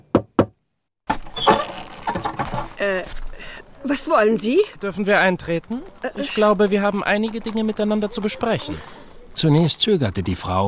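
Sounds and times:
energetic knocking on an old wooden door: 0.0 - 0.6
speech: 2.8 - 3.2, 3.8 - 10.6.

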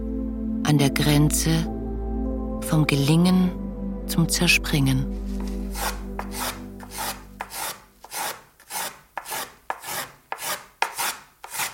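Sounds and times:
speech: 0.7 - 1.8, 2.6 - 6.0
hand tool rasping across spruce wood: 5.4 - 11.7.

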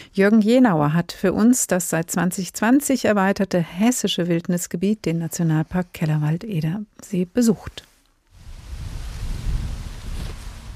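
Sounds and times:
speech: 0.2 - 7.9
wind blowing through European beech trees in Kellerwald-Edersee National Park Hesse Germany: 8.2 - 10.7.

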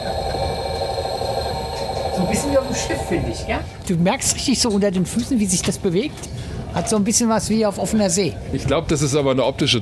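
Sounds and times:
mechanical motor driving a retractable roof closed: 0.0 - 3.9
speech: 2.2 - 9.7.

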